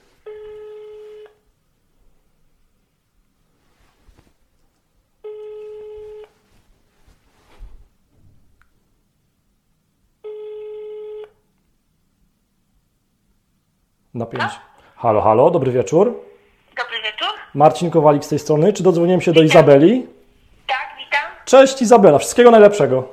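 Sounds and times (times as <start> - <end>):
faint room noise: 0.0 - 23.1
phone ringback tone played over a speakerphone: 0.2 - 1.4, 5.2 - 6.4, 10.2 - 11.3
speech: 14.2 - 16.2, 17.5 - 20.2, 21.5 - 23.1.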